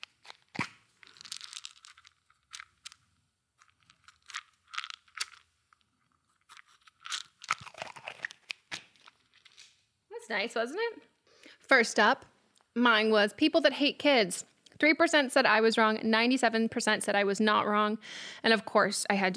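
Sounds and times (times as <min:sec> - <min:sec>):
crunching and chewing Adderall pills: 0:00.0 - 0:09.8
speech: 0:10.3 - 0:11.1, 0:11.7 - 0:19.3.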